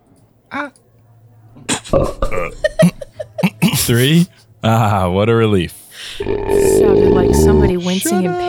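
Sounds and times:
speech: 0:00.5 - 0:00.8, 0:01.9 - 0:02.7, 0:03.9 - 0:08.4
laughter: 0:01.8 - 0:04.3
person belching: 0:01.9 - 0:02.6, 0:06.2 - 0:07.7.

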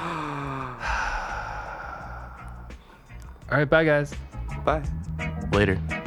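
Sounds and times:
breathy exhalation against the microphone: 0:00.0 - 0:03.5
speech: 0:03.5 - 0:05.9.

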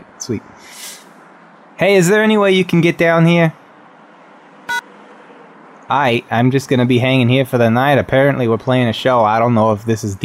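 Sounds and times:
speech: 0:00.2 - 0:00.9, 0:01.8 - 0:03.6, 0:05.9 - 0:10.2
steady phone line hiss: 0:00.2 - 0:02.1
short electronic beep over the phone line: 0:04.7 - 0:04.9.

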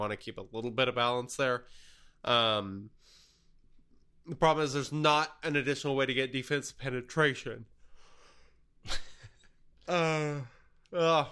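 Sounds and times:
speech: 0:00.0 - 0:03.2, 0:04.2 - 0:07.7, 0:08.8 - 0:09.1, 0:09.9 - 0:11.2
person yawning: 0:09.9 - 0:11.2.

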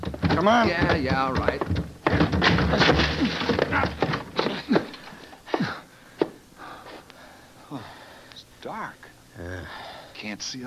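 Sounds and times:
heavy irregular thuds of a shoulder forcing a wooden door: 0:00.0 - 0:04.8
speech: 0:00.4 - 0:04.0, 0:08.8 - 0:10.6.

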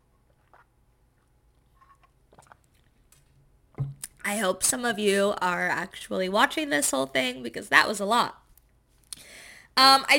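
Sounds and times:
person sipping a drink: 0:00.1 - 0:04.2
speech: 0:03.8 - 0:08.4, 0:09.8 - 0:10.1.

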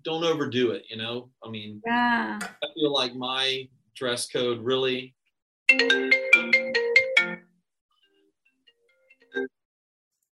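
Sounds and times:
speech: 0:00.0 - 0:06.2
loud electronic phone ringtone of incoming call: 0:05.7 - 0:07.5.

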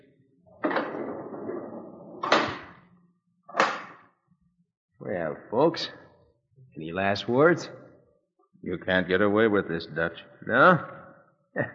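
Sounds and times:
door shutting with solid knocks: 0:00.6 - 0:01.6, 0:02.2 - 0:02.8
speech: 0:05.4 - 0:06.0, 0:06.8 - 0:07.8, 0:08.6 - 0:11.0, 0:11.6 - 0:11.7.

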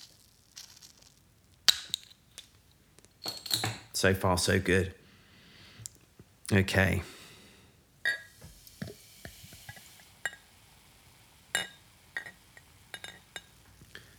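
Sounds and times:
sharp irregular glassy clinks: 0:03.2 - 0:03.9
speech: 0:04.0 - 0:05.0, 0:06.5 - 0:07.2
beer poured from a bottle into a glass: 0:08.1 - 0:14.1
faint fizzing hiss of beer: 0:08.1 - 0:14.1.

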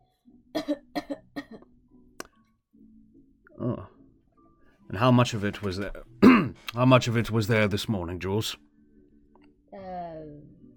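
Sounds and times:
person coughing during stethoscope examination: 0:00.6 - 0:01.6, 0:06.2 - 0:06.7
speech: 0:00.7 - 0:00.9, 0:05.0 - 0:06.1, 0:06.7 - 0:08.6.

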